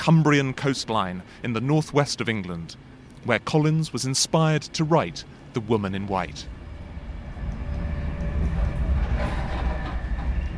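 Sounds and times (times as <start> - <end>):
speech: 0.0 - 6.6
express train running on rails heard from inside the carriage: 5.2 - 10.5.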